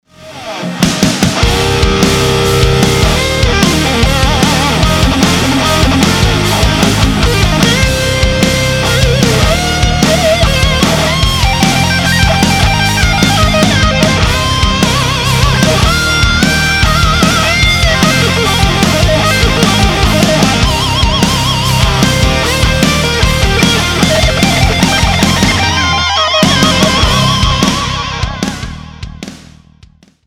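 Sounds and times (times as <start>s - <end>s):
guitar solo: 0.1s - 29.2s.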